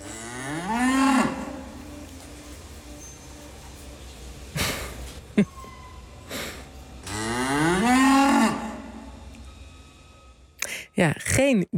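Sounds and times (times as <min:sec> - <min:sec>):
dairy cows and calves mooing on a farm: 0:00.0 - 0:02.0, 0:07.0 - 0:09.3
short squeak: 0:05.4 - 0:06.2
speech: 0:11.0 - 0:11.7.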